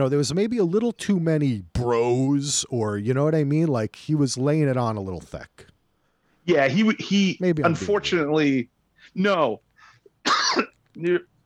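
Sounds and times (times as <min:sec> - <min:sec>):
speech: 0:00.0 - 0:05.7, 0:06.4 - 0:09.6, 0:10.2 - 0:11.3
person coughing: 0:10.2 - 0:10.8.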